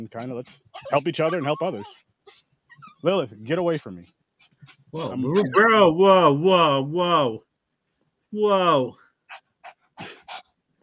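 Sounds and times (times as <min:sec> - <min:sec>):
speech: 0:00.0 - 0:07.5, 0:08.3 - 0:09.0
dog panting and barking: 0:00.1 - 0:05.2, 0:09.3 - 0:10.8.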